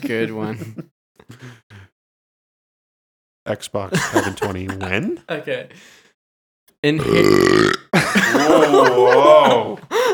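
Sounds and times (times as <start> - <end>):
speech: 0.0 - 0.8, 3.4 - 6.0, 6.8 - 9.9
laughter: 0.0 - 1.5, 3.9 - 5.0, 8.0 - 10.1
loud drawn-out gravelly burp: 7.0 - 8.0.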